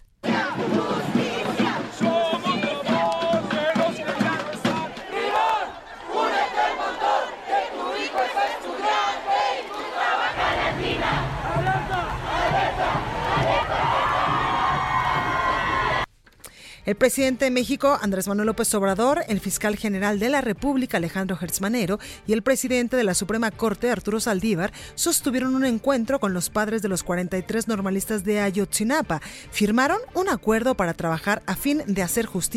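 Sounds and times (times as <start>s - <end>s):
large crowd of young people chanting and shouting in unison while marching through city streets: 0.2s - 16.1s
speech: 16.9s - 32.5s.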